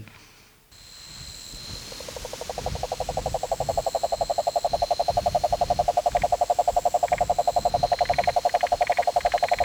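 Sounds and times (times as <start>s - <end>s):
cane toad Rhinella marina trill: 2.0s - 9.6s.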